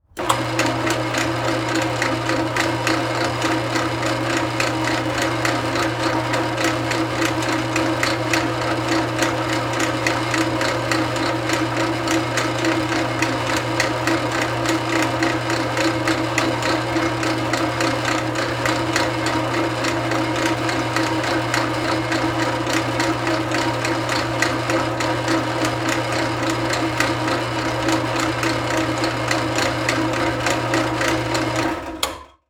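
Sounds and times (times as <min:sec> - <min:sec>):
industrial drill press turning on and off: 0:00.0 - 0:32.4.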